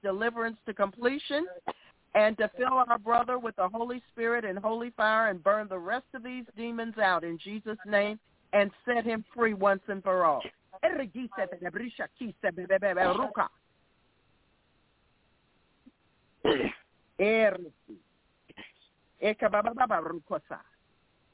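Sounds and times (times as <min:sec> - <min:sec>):
speech: 0:00.0 - 0:13.6, 0:16.4 - 0:18.0, 0:19.2 - 0:20.7
person coughing during a deliverance prayer: 0:01.6 - 0:01.9, 0:16.4 - 0:16.9
person clearing throat during a deliverance prayer: 0:16.4 - 0:16.8, 0:18.5 - 0:18.9.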